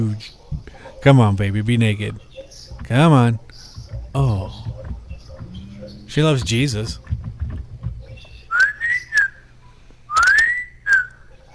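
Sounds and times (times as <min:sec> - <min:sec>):
speech: 0:00.0 - 0:03.5, 0:04.2 - 0:04.8, 0:06.1 - 0:07.2
person whistling: 0:08.5 - 0:09.4, 0:10.1 - 0:11.2.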